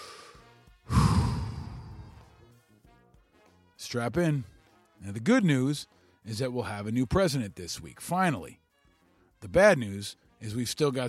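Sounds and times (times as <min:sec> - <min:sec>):
deep breath in and out: 0:00.0 - 0:02.4
speech: 0:03.9 - 0:08.6, 0:09.4 - 0:11.0.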